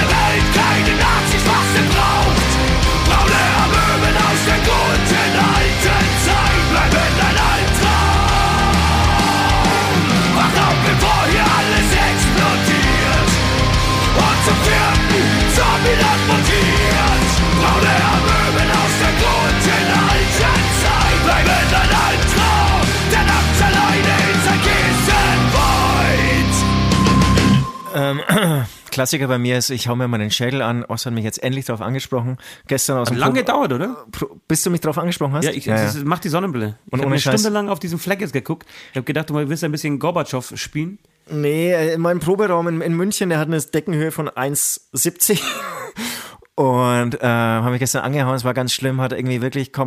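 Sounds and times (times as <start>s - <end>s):
loud dense anti-Nazi rock song with distorted guitars and drums: 0.0s - 28.1s
speech: 29.0s - 49.8s.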